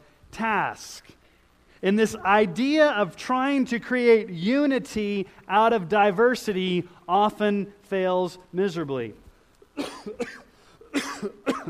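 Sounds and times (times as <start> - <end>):
speech: 0.4 - 1.2, 1.8 - 9.2, 9.8 - 11.6
man coughing: 9.8 - 11.6.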